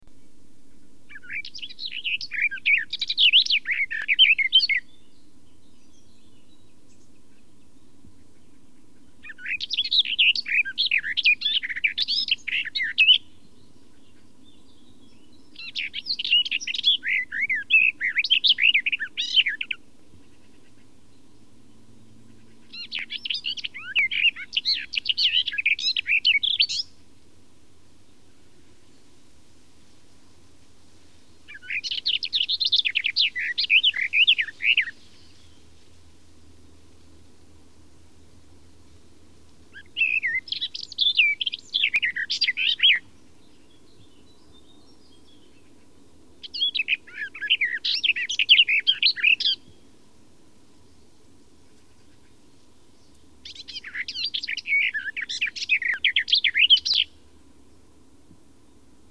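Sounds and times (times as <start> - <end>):
garden warbler: 0.0 - 27.1, 31.2 - 49.9, 50.8 - 57.9.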